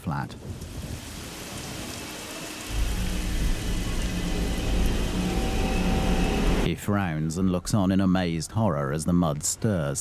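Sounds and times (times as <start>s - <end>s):
speech: 0.0s - 0.8s, 6.7s - 9.9s
heavy rain pouring outside: 0.4s - 6.7s
low rumble: 2.7s - 7.6s.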